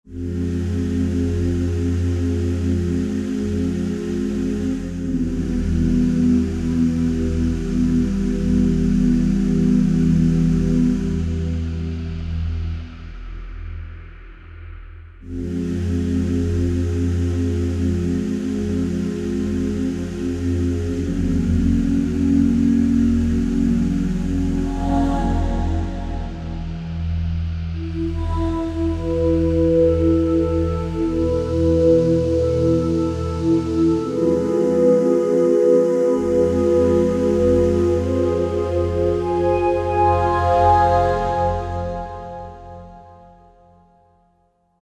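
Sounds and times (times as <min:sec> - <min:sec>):
synth: 0:00.1 - 0:13.5, 0:15.2 - 0:44.0
choir singing ooh: 0:24.5 - 0:26.6, 0:32.2 - 0:43.1.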